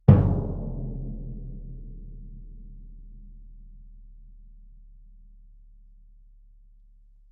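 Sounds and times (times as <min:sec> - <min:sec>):
loud bass drum: 0:00.0 - 0:03.4.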